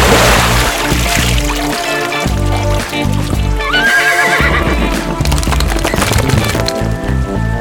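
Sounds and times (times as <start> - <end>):
horse shaking water off its mane: 0.0 - 7.2
horse hooves clopping: 1.1 - 7.5
horse whinnying: 3.5 - 5.2.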